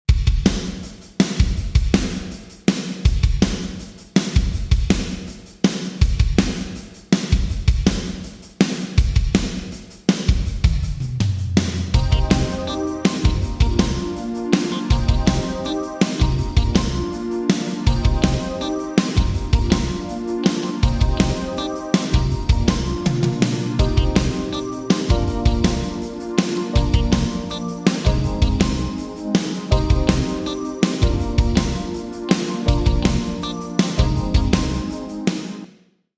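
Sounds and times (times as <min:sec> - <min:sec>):
drums with Yamaha SPX900 room reverb: 0:00.1 - 0:35.8.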